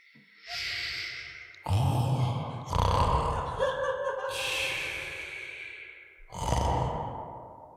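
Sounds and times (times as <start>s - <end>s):
voice imitating a sleeping yeti's snore: 1.6s - 3.4s, 6.3s - 7.5s
laughter: 3.0s - 5.1s.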